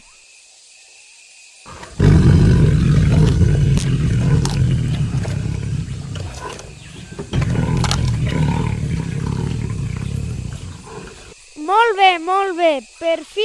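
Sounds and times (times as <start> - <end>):
tiger roaring: 1.7 - 11.4
speech: 12.2 - 13.4.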